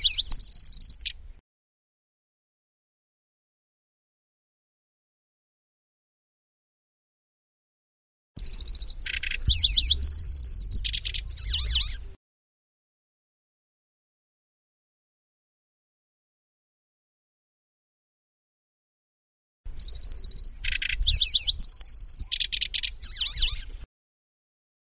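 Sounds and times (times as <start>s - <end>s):
lanceolated warbler singing: 0.0s - 1.4s, 8.4s - 12.2s, 19.7s - 23.9s.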